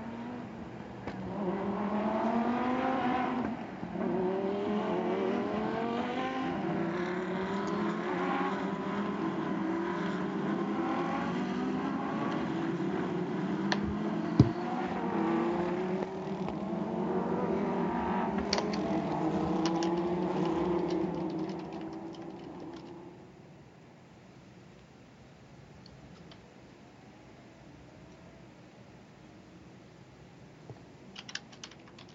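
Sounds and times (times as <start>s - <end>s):
race car engines droning behind a safety car on a racetrack: 0.0s - 23.4s.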